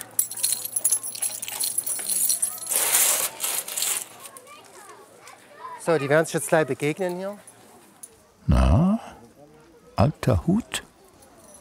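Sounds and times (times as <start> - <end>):
bunch of keys jangling while unlocking a door: 0.0 - 3.1
speech: 5.8 - 7.5, 8.5 - 9.0, 10.0 - 10.8.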